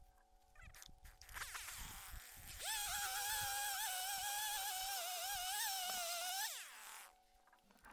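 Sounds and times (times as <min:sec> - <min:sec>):
chainsaw whine during tree felling: 0:01.5 - 0:07.1.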